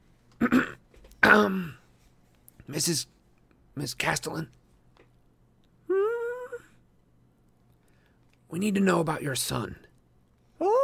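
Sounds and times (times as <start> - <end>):
person coughing and clearing the throat: 0.4 - 1.8
speech: 1.3 - 1.8, 2.7 - 3.2, 3.8 - 4.6, 8.5 - 9.8.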